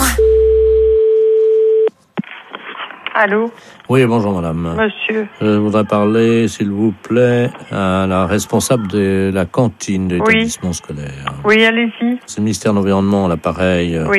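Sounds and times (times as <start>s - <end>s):
telephone beeping tones after a hung-up call: 0.2s - 1.9s
speech: 3.2s - 14.1s.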